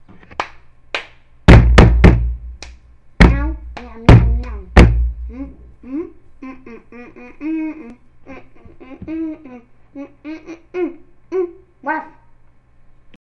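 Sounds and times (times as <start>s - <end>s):
drumming: 1.5s - 5.4s.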